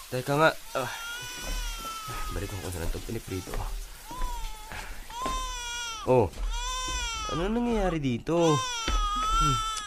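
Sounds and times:
speech: 0:00.1 - 0:03.9, 0:06.0 - 0:06.6, 0:07.3 - 0:08.8, 0:09.4 - 0:09.7
baby crying in high-pitched wails: 0:00.6 - 0:09.8.

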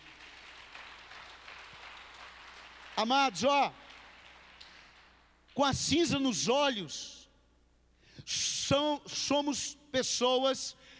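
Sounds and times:
crowd applauding during a sermon: 0:00.0 - 0:05.3
speech: 0:03.0 - 0:03.8, 0:05.6 - 0:07.2, 0:08.2 - 0:10.8.

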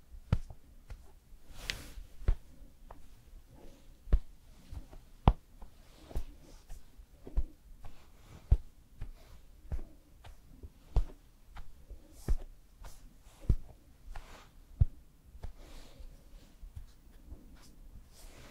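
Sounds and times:
soft brushing swishes: 0:00.2 - 0:18.4.

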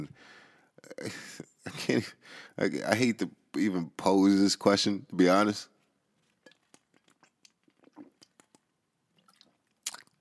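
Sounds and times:
speech: 0:00.0 - 0:05.7
person drinking water: 0:06.2 - 0:10.1
gulp: 0:06.4 - 0:08.6, 0:09.2 - 0:10.1.

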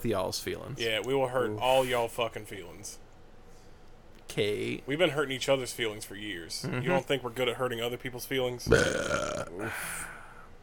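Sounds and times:
speech: 0:00.0 - 0:03.1, 0:04.3 - 0:10.1
loud drawn-out raspy gurgling burp: 0:08.7 - 0:09.8.

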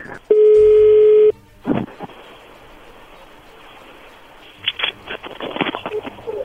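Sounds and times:
hissy telephone line noise with soft crackling bursts: 0:00.0 - 0:06.4
electronic telephone ring tone heard through a handset: 0:00.3 - 0:01.3.

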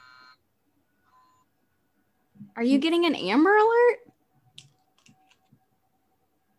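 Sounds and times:
electronic alarm clock buzzing: 0:00.0 - 0:01.5
speech: 0:02.4 - 0:04.1.

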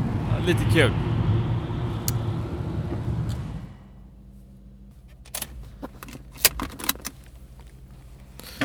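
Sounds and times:
speech: 0:00.4 - 0:01.1
car engine and road rumble: 0:01.7 - 0:08.6
sharp clicks: 0:05.2 - 0:08.4
keys jangling: 0:05.3 - 0:08.3.

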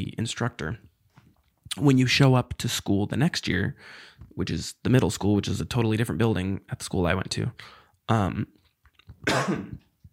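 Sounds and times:
speech: 0:00.0 - 0:00.9, 0:01.8 - 0:08.6, 0:09.2 - 0:09.8
person coughing after a hit from a vape pen: 0:09.2 - 0:09.8
throat clearing after a hit from a vape pen: 0:09.2 - 0:09.9.

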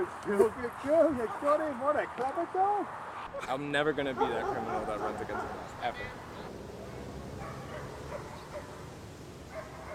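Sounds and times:
speech: 0:00.0 - 0:06.3
steady hiss of noise: 0:00.0 - 0:09.9
police canine-unit dog barking in short irregular yaps: 0:04.1 - 0:05.6, 0:07.4 - 0:08.8, 0:09.5 - 0:09.9.

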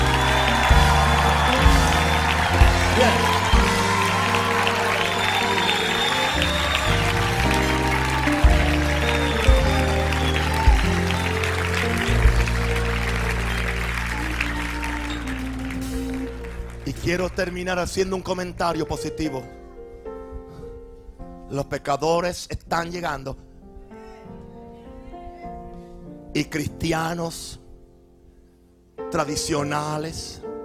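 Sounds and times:
crowd applauding and cheering: 0:00.0 - 0:18.3
sustained keyboard-like music shifting chords: 0:00.0 - 0:21.0
speech: 0:17.1 - 0:19.6, 0:21.5 - 0:23.5, 0:26.3 - 0:27.6, 0:29.1 - 0:30.4.

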